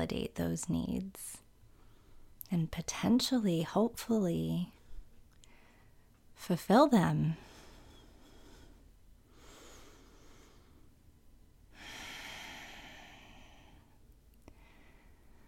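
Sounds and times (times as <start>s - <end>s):
speech: 0.0s - 1.4s, 2.5s - 4.8s, 6.4s - 7.5s
slow deep breathing: 1.6s - 2.4s, 4.8s - 6.1s, 7.4s - 11.0s, 11.7s - 15.4s.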